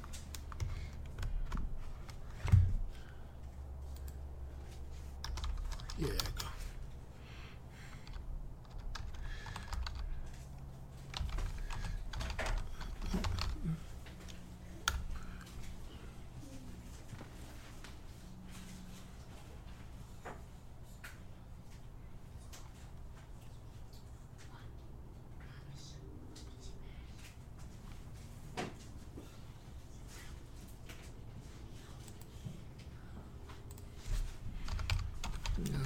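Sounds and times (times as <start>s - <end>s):
typing on a computer keyboard: 0.0s - 2.6s, 5.2s - 6.6s, 8.0s - 10.4s, 11.0s - 13.6s, 34.6s - 35.8s
low hum: 0.0s - 35.8s
faint murmuring: 35.5s - 35.8s.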